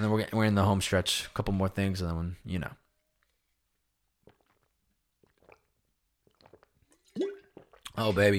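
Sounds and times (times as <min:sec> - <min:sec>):
speech: 0:00.1 - 0:02.8, 0:08.0 - 0:08.3
person gulping water: 0:03.2 - 0:08.3.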